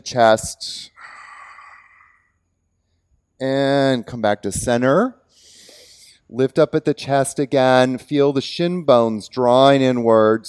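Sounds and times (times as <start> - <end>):
speech: 0.0 - 0.9, 3.4 - 5.2, 6.3 - 10.4
long exhaled breath during a seated yoga twist: 1.0 - 2.4.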